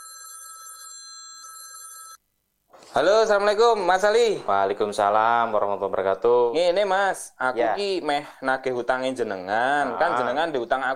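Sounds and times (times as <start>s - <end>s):
telephone ringing on an outgoing call: 0.0s - 2.2s
speech: 3.0s - 10.9s.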